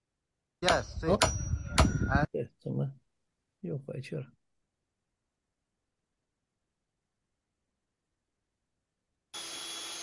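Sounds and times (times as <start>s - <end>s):
speech: 0.7s - 3.0s, 3.6s - 4.4s
power drill boring a hole: 9.3s - 10.0s.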